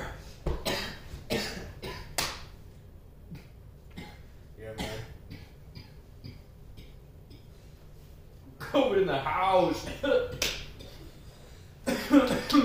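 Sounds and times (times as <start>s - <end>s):
harsh coughing: 0.0s - 2.2s, 3.3s - 7.5s, 9.8s - 11.2s, 11.8s - 12.6s
speech: 8.8s - 10.5s, 12.1s - 12.6s.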